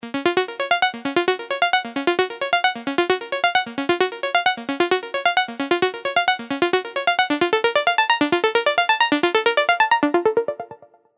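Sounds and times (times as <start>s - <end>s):
Serum synthesizer arpeggios: 0.2s - 10.9s.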